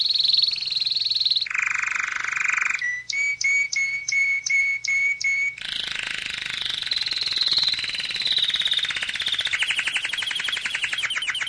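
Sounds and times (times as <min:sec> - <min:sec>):
canary song: 0:00.0 - 0:11.4.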